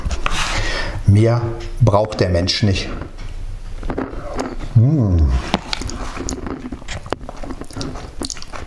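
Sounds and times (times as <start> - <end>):
speech: 1.1 - 3.2
chewing and biting on bratwurst with mashed potatoes and onions: 3.8 - 8.6.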